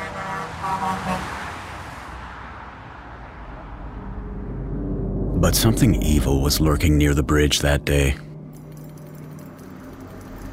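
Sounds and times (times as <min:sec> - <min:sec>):
cars whooshing past on a busy road: 0:00.0 - 0:05.6
steady low traffic rumble: 0:00.0 - 0:10.5
speech: 0:05.4 - 0:08.3.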